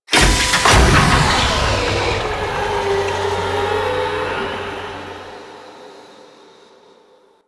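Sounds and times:
reactor pump activating: 0.1 - 5.7.

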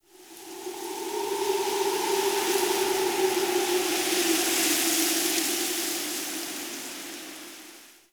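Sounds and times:
medium night wind gust: 0.0 - 6.4.

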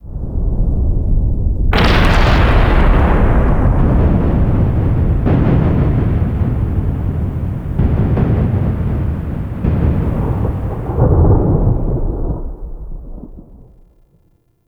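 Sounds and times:
void storm explosion: 0.2 - 14.0.

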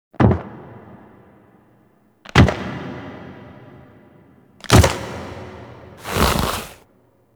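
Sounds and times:
foley footsteps: 6.0 - 6.8.

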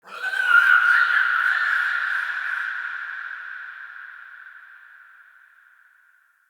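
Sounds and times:
screechy creature: 0.0 - 2.2.

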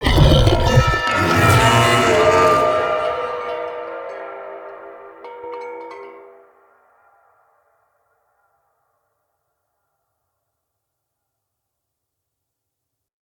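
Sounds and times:
corrupted taunt vocal scream: 0.0 - 3.4.

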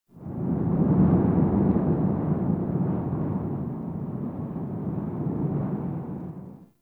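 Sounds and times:
wind in a half open cave in a forest: 0.1 - 6.8.

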